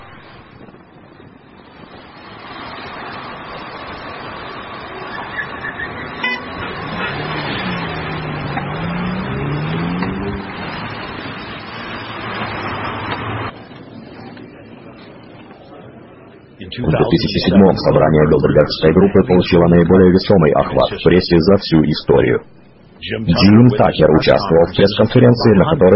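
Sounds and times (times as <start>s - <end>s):
traffic noise: 0.0s - 25.9s
car engine passing by: 1.6s - 13.6s
horn-like tone: 5.3s - 7.8s
speech: 16.8s - 25.9s.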